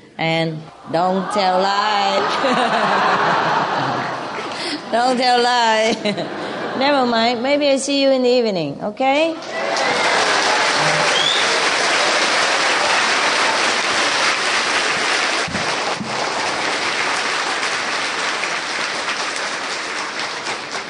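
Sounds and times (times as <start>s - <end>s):
speech: 0.2s - 3.7s, 4.9s - 10.0s
laughter: 1.2s - 7.3s, 9.4s - 14.4s
large audience applause: 1.9s - 4.8s, 9.4s - 20.8s.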